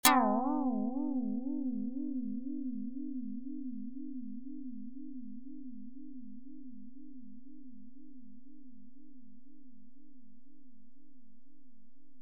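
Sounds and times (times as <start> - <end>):
Karplus-Strong plucked synth tone with chorus: 0.0 - 6.1.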